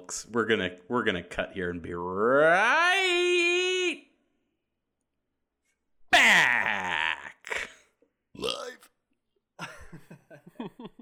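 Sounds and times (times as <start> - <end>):
speech: 0.1 - 3.6
loud voiced burp: 6.1 - 8.9
laughter: 9.6 - 11.0.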